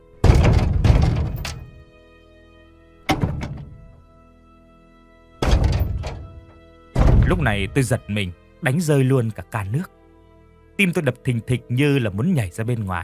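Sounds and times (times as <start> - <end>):
heavy banging on a bathroom door: 0.2 - 1.8, 3.0 - 4.0, 5.4 - 7.6
speech: 7.3 - 10.0, 10.8 - 13.0.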